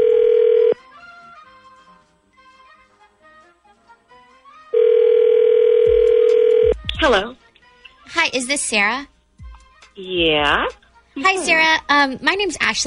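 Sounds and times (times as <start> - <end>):
telephone dial tone as a call is placed: 0.0 - 0.8, 4.8 - 6.7
speech: 7.0 - 7.4, 8.2 - 9.1, 10.0 - 12.8.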